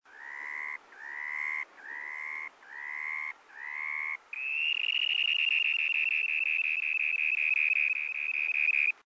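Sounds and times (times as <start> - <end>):
dunlin calling: 0.1 - 9.0.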